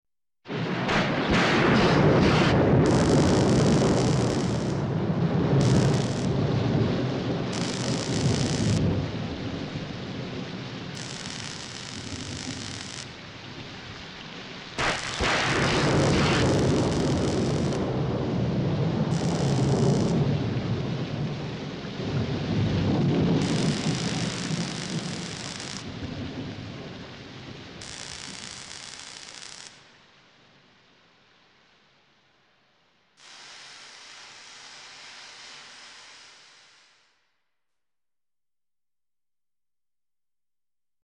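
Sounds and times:
lightning: 0.5 - 29.9
electric sparks: 0.8 - 6.6, 7.3 - 8.9, 10.9 - 13.3, 14.8 - 18.0, 19.1 - 20.2, 23.3 - 26.0, 27.8 - 29.9, 33.2 - 37.1.

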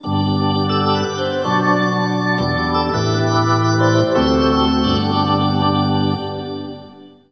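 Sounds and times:
hockey organ music in the USA: 0.0 - 7.3.

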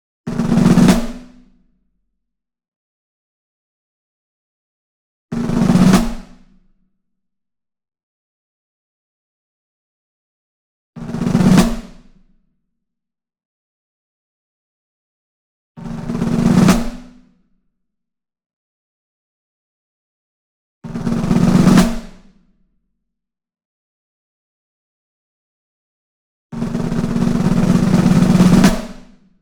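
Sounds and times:
Ludwig Black Beauty snare drum roll: 0.3 - 1.4, 5.4 - 6.5, 11.0 - 12.1, 15.8 - 17.2, 20.9 - 22.3, 26.6 - 29.2.

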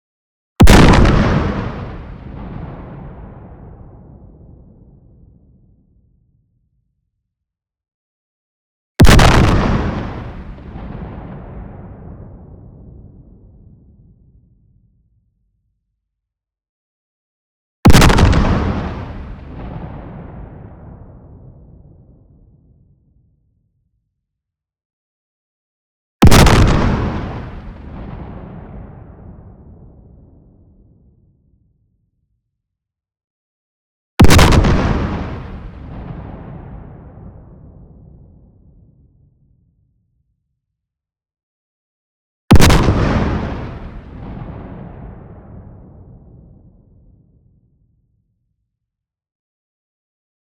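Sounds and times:
long explosion: 0.6 - 5.6, 9.0 - 14.2, 17.9 - 22.9, 26.2 - 31.0, 34.2 - 39.0, 42.5 - 47.3.

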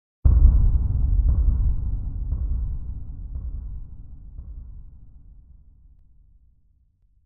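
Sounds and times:
deep impact drum hits: 0.3 - 5.8.

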